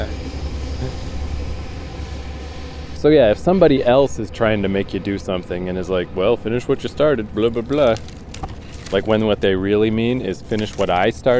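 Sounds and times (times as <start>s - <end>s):
passenger train rumbling past at a moderate distance: 0.0s - 10.5s
speech: 3.0s - 8.1s, 8.9s - 11.3s.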